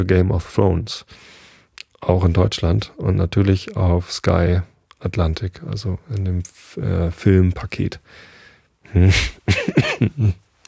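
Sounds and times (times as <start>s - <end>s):
speech: 0.0s - 1.4s, 2.0s - 8.3s, 8.9s - 10.4s
person with a mild cold coughing: 9.1s - 10.3s.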